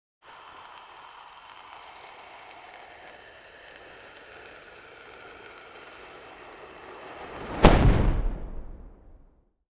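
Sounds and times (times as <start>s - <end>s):
potion fizzing: 0.2s - 7.8s
potion exploding: 4.2s - 9.3s.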